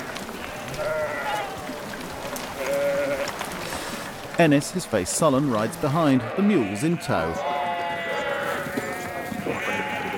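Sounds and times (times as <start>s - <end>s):
large flock of sheep bleating while being counted into pens: 0.6s - 1.7s, 2.6s - 3.3s, 6.0s - 10.1s
speech: 4.4s - 7.5s.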